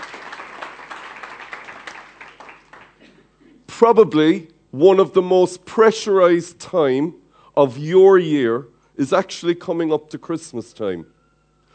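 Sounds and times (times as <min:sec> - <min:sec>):
audience applause welcoming guests: 0:00.0 - 0:03.1
speech: 0:03.8 - 0:11.2.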